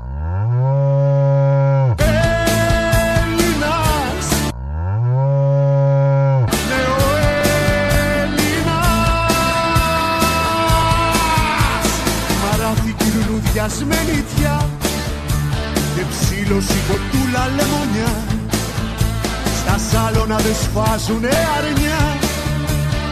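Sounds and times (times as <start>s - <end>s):
cow mooing: 0.0s - 2.0s, 4.5s - 6.5s
loud busy music: 2.0s - 4.5s, 6.5s - 23.1s
speech: 20.8s - 22.1s.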